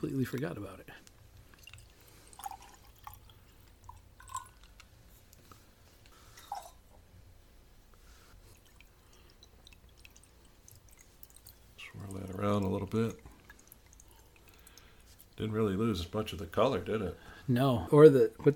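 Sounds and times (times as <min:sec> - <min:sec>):
speech: 0:00.0 - 0:01.0, 0:12.4 - 0:13.3, 0:15.4 - 0:18.5
faint hiss: 0:00.0 - 0:18.5
water free-poured into a drink: 0:01.1 - 0:05.5, 0:08.3 - 0:15.5.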